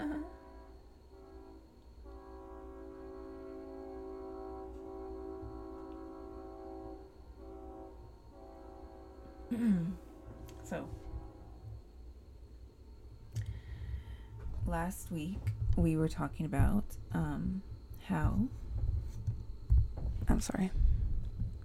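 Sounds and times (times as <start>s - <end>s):
train horn blasts: 0.0s - 11.9s
low rumble of a passing train: 0.0s - 21.6s
speech: 9.5s - 10.0s, 10.7s - 11.0s, 14.7s - 18.6s, 20.3s - 20.9s.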